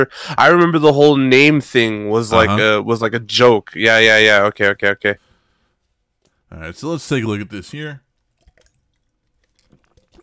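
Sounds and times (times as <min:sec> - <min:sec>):
speech: 0:00.0 - 0:05.3, 0:06.5 - 0:08.0
person sipping water with wet slurps and gulps: 0:08.2 - 0:10.2.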